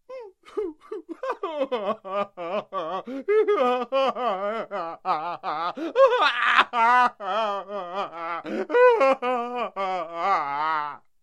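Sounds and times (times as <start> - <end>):
man crying: 0.1 - 11.0.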